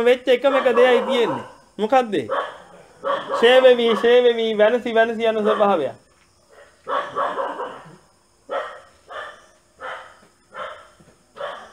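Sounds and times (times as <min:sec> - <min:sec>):
speech: 0:00.0 - 0:02.4, 0:03.0 - 0:06.0
dog barking: 0:00.5 - 0:01.7, 0:02.3 - 0:04.4, 0:05.4 - 0:05.9, 0:06.5 - 0:11.7.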